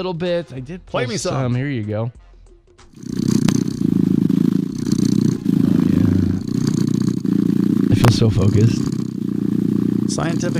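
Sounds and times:
speech: 0.0s - 2.2s, 2.8s - 3.4s, 8.2s - 9.0s, 10.2s - 10.5s
cat purring: 3.0s - 10.5s.

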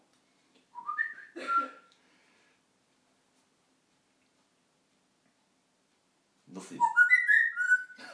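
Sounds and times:
parrot whistling and chattering: 0.8s - 1.9s, 6.8s - 8.0s
speech: 6.6s - 7.0s.

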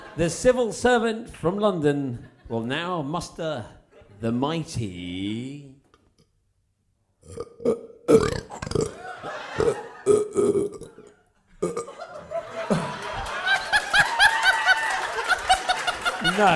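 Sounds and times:
group laughing and chuckling: 0.0s - 0.3s, 8.8s - 10.4s, 11.0s - 16.5s
speech: 0.2s - 5.8s, 7.3s - 8.3s, 16.4s - 16.5s
man burping loudly after drinking a whole drink: 7.2s - 9.0s, 9.6s - 12.0s.

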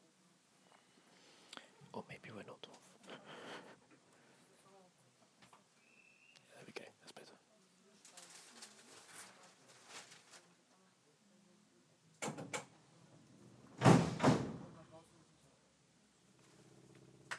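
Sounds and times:
faint murmur: 0.0s - 5.8s, 6.4s - 17.3s
compressed-air doors hissing and thumping shut: 13.8s - 14.7s.

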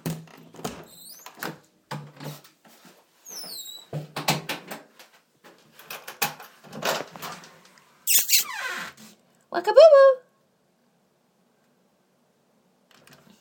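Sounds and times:
squeaky door creaking open: 0.1s - 1.6s, 3.3s - 4.7s, 8.1s - 9.1s
speech: 9.7s - 10.2s.

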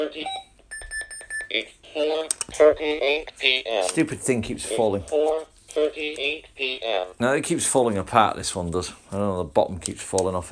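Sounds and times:
speech: 0.0s - 0.5s, 1.5s - 10.4s
alarm clock high electronic beeps: 0.0s - 1.5s.

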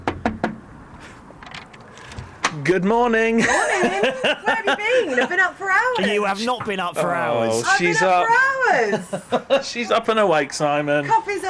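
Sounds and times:
knocking on a front door: 0.0s - 0.6s
speech: 2.6s - 11.4s
laughter: 3.4s - 7.4s, 8.7s - 9.9s.

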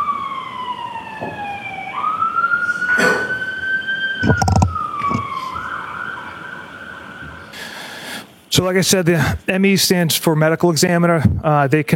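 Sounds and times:
ambulance siren wailing outside a courtroom: 0.0s - 7.7s
knocks and thumps: 4.2s - 5.2s
speech: 8.6s - 11.9s.

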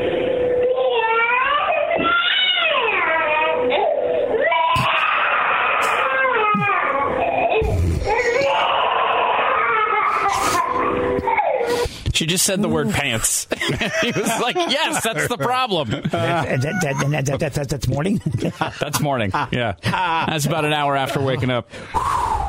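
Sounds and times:
toddler boy crying and yelling: 0.6s - 11.8s
speech: 12.3s - 22.4s
laughter: 12.7s - 21.6s.

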